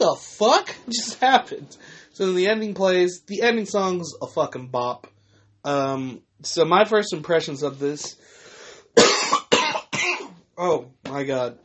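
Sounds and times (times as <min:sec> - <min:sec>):
speech: 0:00.0 - 0:08.4, 0:10.6 - 0:11.6
person coughing: 0:09.0 - 0:10.4.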